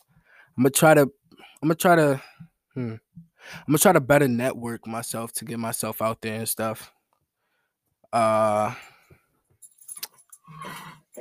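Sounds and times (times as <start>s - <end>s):
speech: 0.6s - 7.0s, 8.1s - 8.9s
objects knocked over by a dog clattering and clinking: 9.6s - 11.1s.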